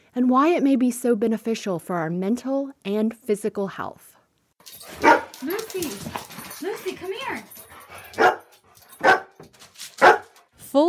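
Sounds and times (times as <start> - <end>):
speech: 0.2 - 4.2, 4.9 - 7.5
dog barking: 4.9 - 5.5, 8.0 - 9.4, 10.0 - 10.4.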